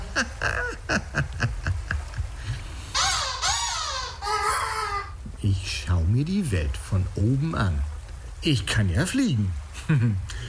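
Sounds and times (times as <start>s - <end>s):
laughter: 0.0s - 2.6s, 9.8s - 10.2s
speech: 0.2s - 1.3s, 5.4s - 10.4s
herring gull calls: 3.0s - 5.2s.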